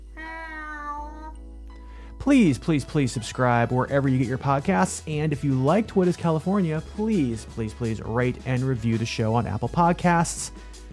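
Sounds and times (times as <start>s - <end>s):
headquarters cat meowing: 0.2s - 1.4s
speech: 2.2s - 10.7s.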